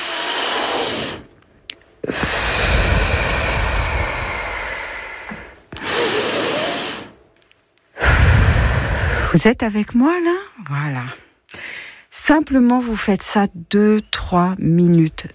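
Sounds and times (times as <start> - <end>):
slow deep breathing during a relaxation exercise: 0.0 - 9.4, 11.3 - 12.1
speech: 9.3 - 11.2, 12.2 - 15.3.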